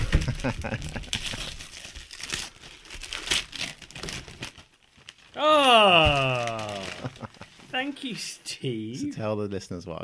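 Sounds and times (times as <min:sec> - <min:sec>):
wrapping paper crinkling and tearing as a gift book is unwrapped: 0:00.2 - 0:07.7
speech: 0:00.4 - 0:01.4, 0:05.4 - 0:06.4, 0:07.8 - 0:10.0.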